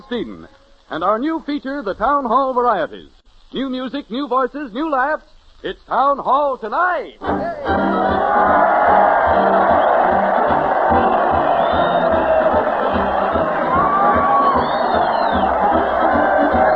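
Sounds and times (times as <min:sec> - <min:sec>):
speech: 0:00.1 - 0:09.7
large crowd cheering and shouting at a street parade: 0:07.3 - 0:16.7.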